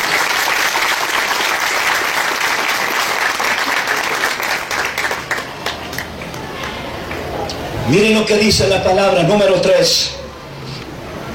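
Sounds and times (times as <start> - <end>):
audience applauding: 0.0 - 7.4
speech: 7.9 - 10.2.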